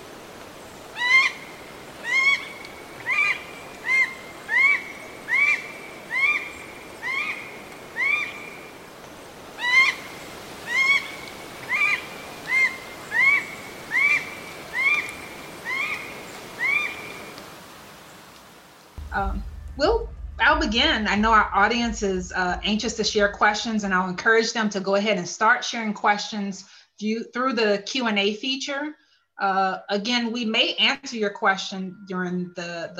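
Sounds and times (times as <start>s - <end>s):
red goshawk cackling calls: 0.9s - 8.6s, 9.6s - 17.2s
speech: 19.2s - 20.0s, 20.6s - 32.9s.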